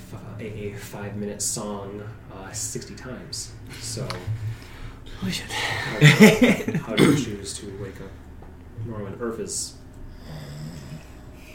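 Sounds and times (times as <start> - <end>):
speech: 0.4 - 4.5, 5.2 - 8.2, 8.8 - 10.7
laughter: 5.5 - 7.0
person imitating heavy snoring: 10.2 - 11.5.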